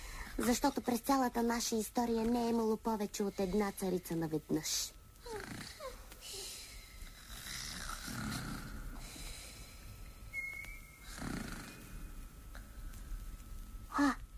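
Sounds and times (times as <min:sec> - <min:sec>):
speech: 0:00.4 - 0:05.6
two sleepers snoring in slow rhythmic rumbles: 0:05.2 - 0:09.7, 0:11.0 - 0:12.1
thin whistling wheeze on the breath: 0:10.2 - 0:11.4.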